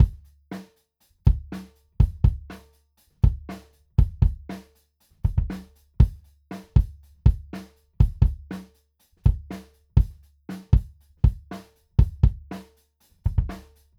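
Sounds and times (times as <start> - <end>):
kick drum, front microphone: 1.3 - 2.5, 3.2 - 4.5, 5.3 - 6.2, 6.8 - 8.5, 9.3 - 10.2, 10.8 - 12.5, 13.3 - 13.6.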